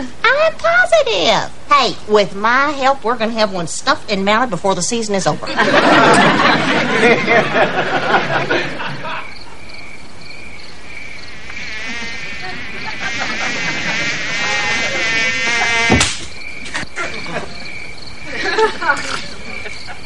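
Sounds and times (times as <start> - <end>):
speech: 0.0 - 9.0
laughter: 5.4 - 9.6, 11.9 - 15.9, 16.6 - 20.0
high-pitched whine of mosquitoes buzzing: 9.3 - 18.3
busy burst of noise: 11.3 - 16.4.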